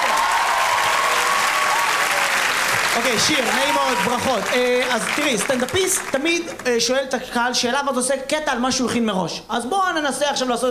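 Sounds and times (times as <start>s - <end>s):
audience applause at a stand-up comedy show: 0.0s - 6.8s
speech: 3.0s - 10.6s.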